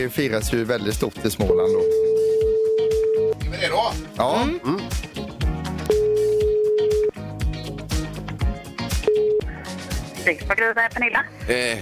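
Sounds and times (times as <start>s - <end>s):
speech: 0.0s - 2.4s, 3.6s - 5.1s, 10.3s - 11.8s
loud rhythmic radio music bed: 0.0s - 11.8s
telephone ringback tone of an outgoing call: 1.5s - 3.3s, 5.9s - 7.1s, 9.1s - 9.5s.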